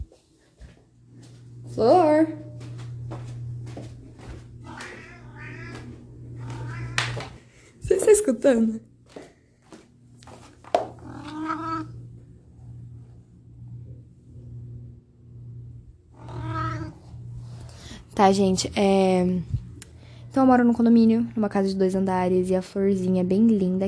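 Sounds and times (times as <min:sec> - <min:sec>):
steady low hum: 0:00.0 - 0:23.8
speech: 0:01.8 - 0:02.5, 0:08.2 - 0:08.9, 0:18.2 - 0:19.6, 0:20.4 - 0:23.8
pet cat meowing complainingly: 0:04.6 - 0:07.2, 0:11.0 - 0:12.0, 0:16.2 - 0:17.0.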